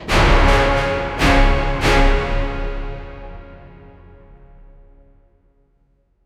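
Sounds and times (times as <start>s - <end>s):
taiko drum: 0.0s - 3.8s
epic orchestral hit: 0.0s - 4.8s.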